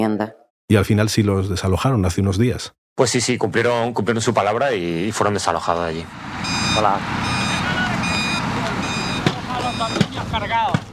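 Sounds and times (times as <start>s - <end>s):
speech: 0.0s - 7.4s, 9.8s - 10.8s
heavy machinery rumbling on a demolition site: 6.0s - 10.9s
reversing alarm beeping: 6.1s - 10.6s.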